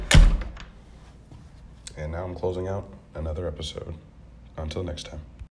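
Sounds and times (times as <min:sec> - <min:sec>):
door shutting with a heavy thunk: 0:00.0 - 0:00.6
speech: 0:02.0 - 0:05.4.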